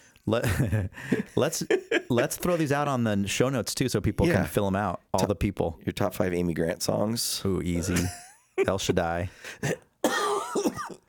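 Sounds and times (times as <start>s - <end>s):
speech: 0.3s - 10.2s
harsh raspy throaty cough: 9.6s - 11.0s.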